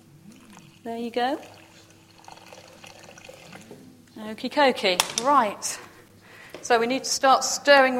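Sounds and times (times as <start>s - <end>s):
fizzy water pouring into a bowl for bread: 0.3s - 3.7s
speech: 0.8s - 1.6s, 4.2s - 5.9s, 6.6s - 7.9s.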